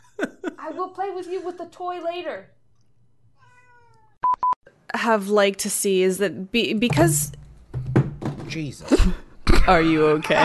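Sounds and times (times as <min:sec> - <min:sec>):
speech: 0:00.7 - 0:02.6, 0:05.0 - 0:07.4, 0:08.5 - 0:10.4
cat meowing: 0:03.4 - 0:04.2.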